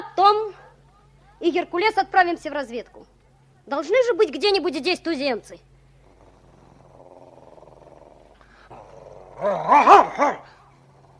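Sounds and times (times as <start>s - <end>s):
speech: 1.4s - 5.7s, 9.4s - 10.6s
agitated dog growling: 6.0s - 11.1s
agitated dog whining barks: 9.7s - 10.5s.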